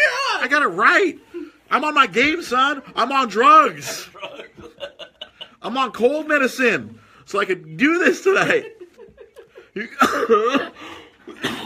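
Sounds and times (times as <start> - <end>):
speech: 0.4 - 4.6, 5.6 - 8.8, 9.8 - 11.6
laughter: 2.6 - 5.9, 8.2 - 11.4
harsh throaty coughs: 9.9 - 11.6.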